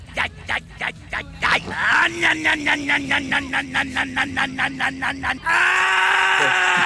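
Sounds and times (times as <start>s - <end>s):
laughter: 0.0s - 6.8s
man screaming in a replayed video clip: 1.4s - 6.8s
speech: 2.1s - 6.8s.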